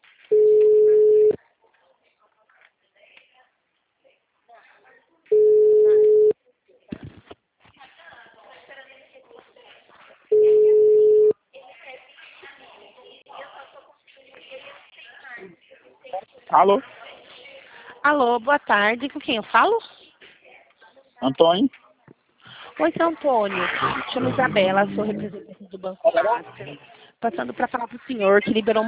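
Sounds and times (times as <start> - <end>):
faint sound: 0.0 - 28.8
telephone ringback tone on an outgoing call: 0.3 - 1.4, 5.3 - 6.3, 10.3 - 11.3
speech: 16.6 - 17.0, 18.1 - 19.9, 21.2 - 21.8, 22.8 - 28.8.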